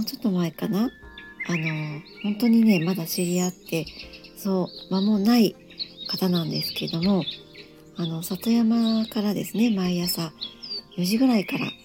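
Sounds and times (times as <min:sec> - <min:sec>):
speech: 0:00.0 - 0:07.4, 0:08.0 - 0:11.8
wild birds chirping and singing from a satoyama hillside: 0:00.0 - 0:11.8.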